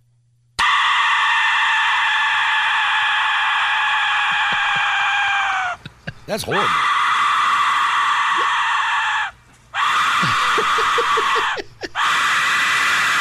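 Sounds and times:
Aztec death whistle shriek: 0:00.6 - 0:04.3, 0:06.5 - 0:13.1
laughter: 0:04.1 - 0:06.7, 0:10.2 - 0:12.0
speech: 0:06.3 - 0:07.0.

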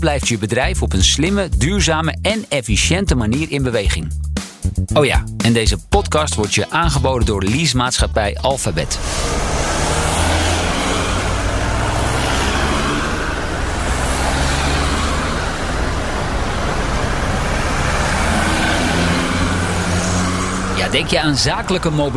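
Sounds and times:
speech: 0:00.0 - 0:09.9, 0:20.9 - 0:22.1
cars in commuter road traffic passing: 0:08.5 - 0:22.1.

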